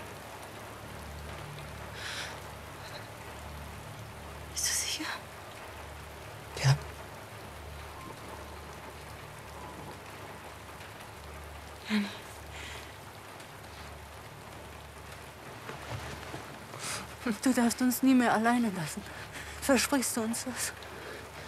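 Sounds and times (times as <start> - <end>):
steady rain pattering: 0.0 - 21.4
hushed voices exchanging words: 6.6 - 6.8
speech: 17.3 - 20.9.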